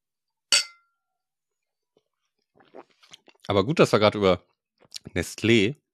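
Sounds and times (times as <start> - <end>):
glasses clinking in a toast: 0.6 - 0.9
speech: 2.8 - 4.5, 5.2 - 5.8.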